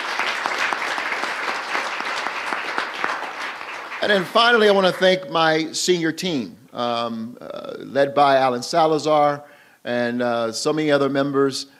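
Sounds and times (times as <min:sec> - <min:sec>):
sizable crowd applauding in a room: 0:00.0 - 0:05.2
speech: 0:04.0 - 0:11.7.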